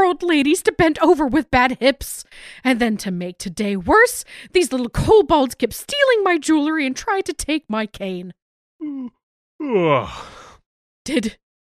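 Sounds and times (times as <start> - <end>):
speech: 0.1 - 10.4, 11.1 - 11.4
person yawning: 8.8 - 10.6
short vocal sounds: 8.8 - 10.6.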